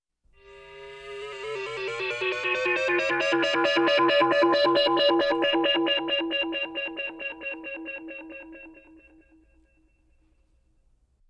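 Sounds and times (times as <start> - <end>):
science fiction siren: 0.4 - 8.9.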